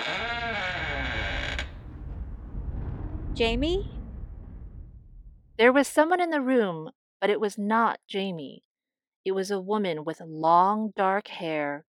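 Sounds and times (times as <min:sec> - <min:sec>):
door creaking open: 0:00.0 - 0:02.4
low rumble: 0:00.3 - 0:06.0
speech: 0:03.4 - 0:04.0, 0:05.6 - 0:11.8.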